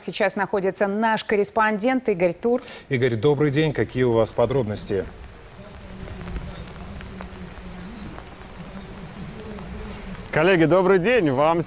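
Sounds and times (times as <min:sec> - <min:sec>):
speech: 0:00.0 - 0:05.3, 0:10.3 - 0:11.6
heavy rain pouring down outdoors: 0:02.7 - 0:11.6
sharp rain drips and patters on surfaces: 0:02.7 - 0:11.6
faint low murmur: 0:03.6 - 0:11.6.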